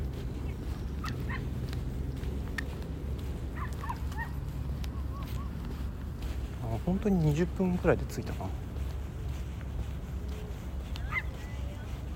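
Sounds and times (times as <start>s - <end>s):
steady outdoor noise: 0.0s - 12.1s
dogs barking and yipping: 0.4s - 6.4s, 9.3s - 12.1s
speech: 6.9s - 8.7s.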